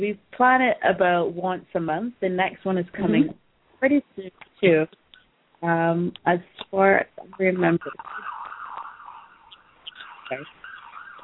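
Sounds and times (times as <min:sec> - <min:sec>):
speech: 0:00.0 - 0:05.0, 0:05.6 - 0:08.3, 0:10.3 - 0:10.6
emergency siren of a fire truck or ambulance passing in the street: 0:07.4 - 0:11.2.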